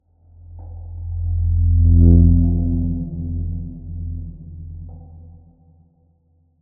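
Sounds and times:
cinematic metallic trailer riser: 1.0 - 5.0.

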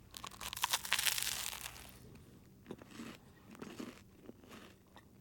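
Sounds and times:
person eating: 0.0 - 4.7.

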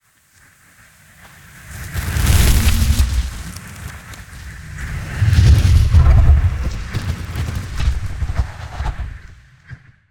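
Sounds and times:
designed fire swooshes: 1.4 - 9.3
designed evolving fire burst: 1.8 - 7.0.

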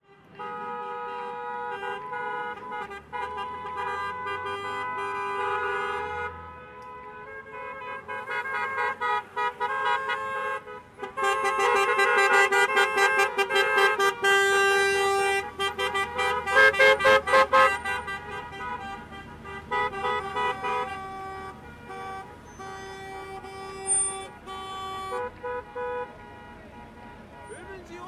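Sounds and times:
car horns honking in a traffic jam: 0.0 - 28.0
traffic: 0.0 - 28.0
car tyres skidding: 8.1 - 28.0.

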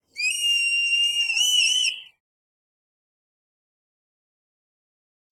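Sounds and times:
red kite screeching call: 0.2 - 2.1.

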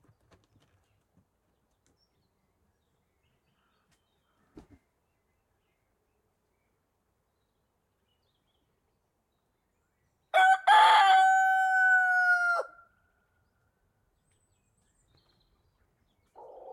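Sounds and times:
rooster crowing in a countryside field by day: 10.4 - 12.9.

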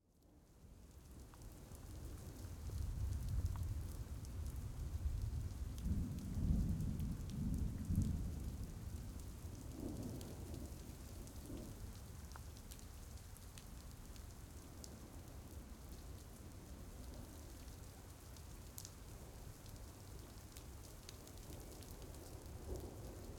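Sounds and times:
soft rain: 0.0 - 23.3
thunder: 4.5 - 10.8.

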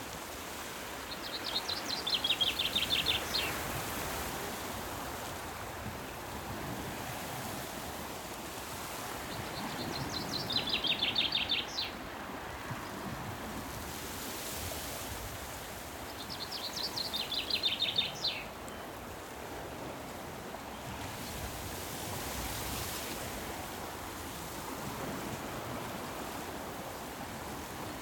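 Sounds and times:
distant sea waves: 0.0 - 28.0
rural summer birdsong: 1.1 - 3.8, 9.3 - 12.0, 16.1 - 18.8.

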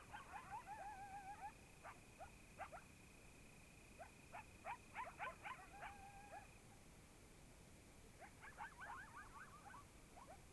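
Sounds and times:
group of coyotes yipping and howling in Oregon: 0.0 - 3.0, 3.8 - 6.6, 8.2 - 10.4.

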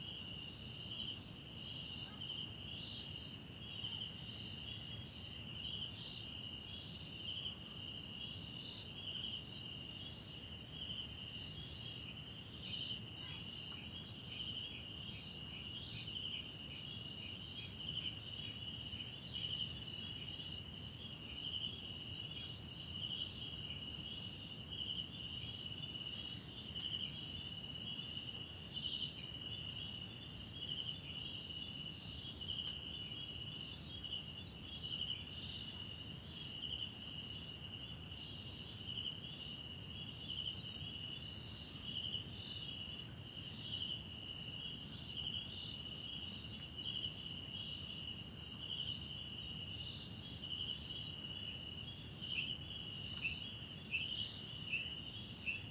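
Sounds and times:
South African crickets chirping at night in a wetland park forest: 0.0 - 55.6.

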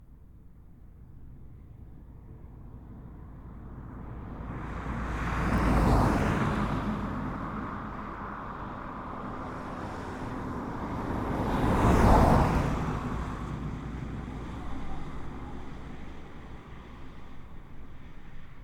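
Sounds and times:
cars passing by at moderate speed on a rural road: 2.6 - 18.6.

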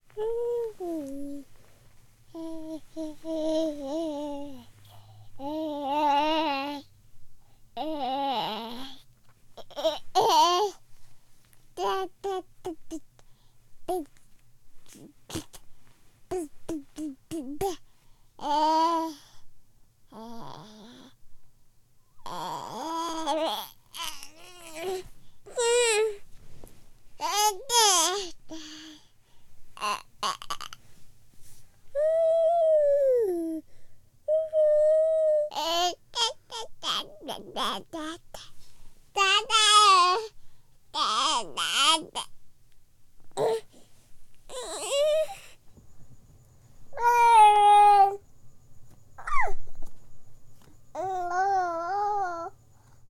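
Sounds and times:
relaxed infant cooing and babbling dada: 0.1 - 1.5, 2.3 - 6.9, 7.8 - 10.8, 11.8 - 13.1, 13.9 - 14.1, 16.3 - 17.8, 18.4 - 19.4, 20.1 - 21.2, 22.2 - 26.2, 27.2 - 29.0, 29.8 - 30.8, 31.9 - 33.7, 34.3 - 38.5, 39.2 - 40.4, 41.0 - 42.3, 43.3 - 43.8, 44.5 - 45.5, 46.9 - 48.2, 49.2 - 49.7, 50.9 - 52.6.

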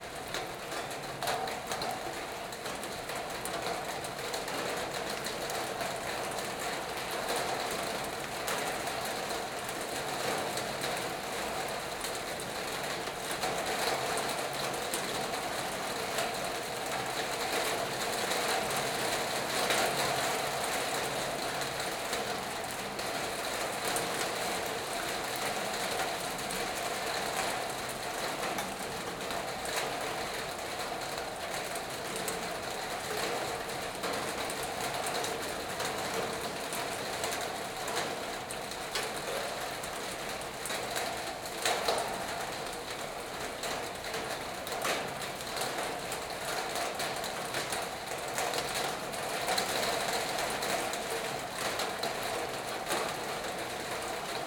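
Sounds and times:
rain pouring on a metal garage roof heard from inside: 0.0 - 54.4.

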